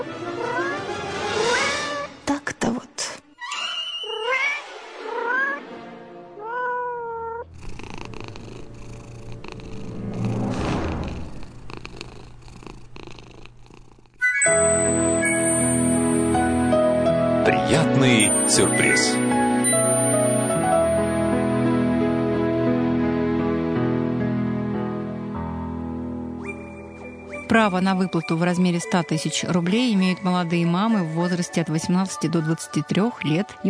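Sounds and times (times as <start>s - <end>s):
cat yowling and meowing: 0.0s - 2.2s, 3.5s - 5.6s, 6.4s - 7.5s
music: 0.0s - 3.6s, 4.3s - 6.6s, 7.8s - 11.1s, 14.2s - 33.6s
speech: 18.5s - 19.3s, 27.5s - 33.6s.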